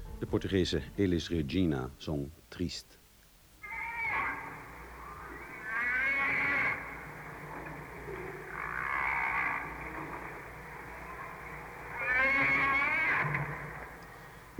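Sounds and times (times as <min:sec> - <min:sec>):
speech: 0:00.3 - 0:03.0
fin whale vocalizing: 0:03.6 - 0:14.4.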